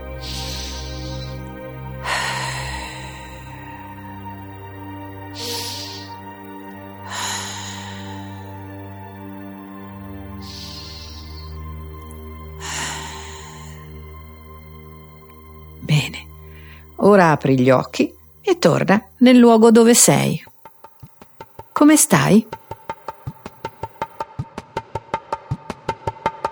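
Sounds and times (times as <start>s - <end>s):
slow deep breaths: 0.0s - 17.0s
soft sustained musical drone: 0.0s - 20.5s
speech: 17.1s - 20.5s, 21.8s - 22.6s.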